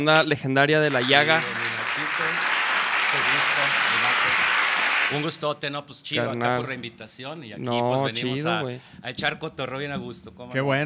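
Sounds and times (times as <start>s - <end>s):
speech: 0.0s - 1.6s, 3.1s - 4.4s, 5.1s - 10.8s
crowd applause: 0.9s - 5.3s.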